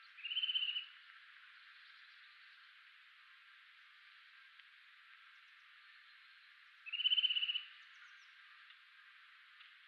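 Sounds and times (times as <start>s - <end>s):
Eurasian nuthatch Sitta europaea trill call: 0.2s - 0.9s, 6.9s - 7.7s.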